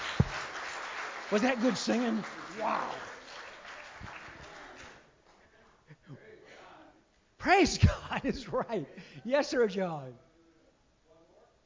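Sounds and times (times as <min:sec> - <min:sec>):
audience applause after singing: 0:00.0 - 0:05.1
speech: 0:01.3 - 0:03.1, 0:07.4 - 0:10.2.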